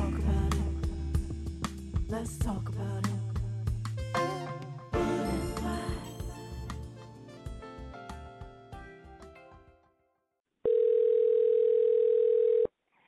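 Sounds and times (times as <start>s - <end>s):
music: 0.0s - 10.2s
outgoing phone ringing tone: 10.7s - 12.7s.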